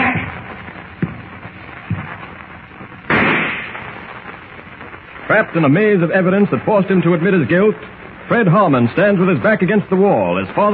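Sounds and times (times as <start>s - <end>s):
soft thuds: 1.0s - 2.3s
rifle shot: 3.1s - 4.0s
speech: 5.3s - 10.7s.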